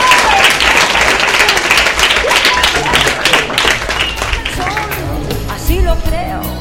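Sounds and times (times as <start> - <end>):
audience applause from a group: 0.0 - 5.2
faint murmur of voices: 1.2 - 5.5.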